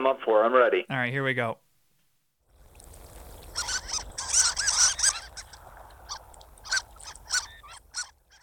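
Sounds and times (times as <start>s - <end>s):
low steady hiss: 0.0s - 8.0s
speech: 0.1s - 1.6s
Harlequin duck calling: 3.5s - 8.4s.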